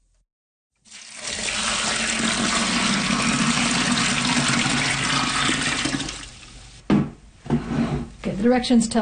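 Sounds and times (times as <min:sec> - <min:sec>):
water pouring into a fermenting bucket for rhubarb wine: 0:00.8 - 0:06.6
speech: 0:08.4 - 0:09.0.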